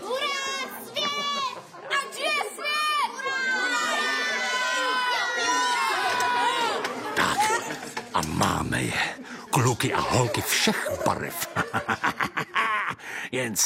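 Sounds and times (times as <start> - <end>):
dense crowd of children shouting, squealing and chattering: 0.0 - 13.1
laughter: 0.5 - 2.4, 9.2 - 13.3
speech: 8.3 - 13.6.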